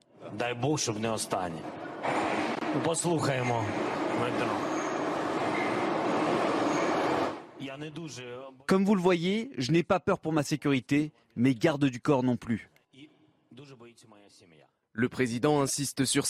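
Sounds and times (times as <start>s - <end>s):
speech: 0.3s - 4.8s, 7.6s - 12.7s, 13.6s - 16.2s
metro train roaring past: 1.6s - 7.6s.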